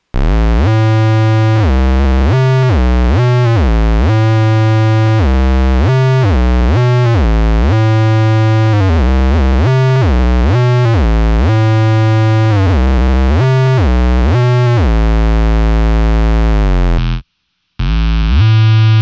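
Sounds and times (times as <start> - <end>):
square wave synth bass: 0.0 - 17.2, 17.8 - 19.0.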